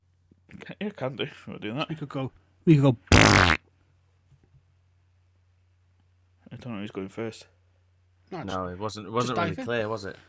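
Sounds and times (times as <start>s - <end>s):
speech: 0.8s - 3.6s, 6.6s - 7.6s, 8.3s - 10.2s
person's mouth imitating a fart noise: 3.1s - 3.6s.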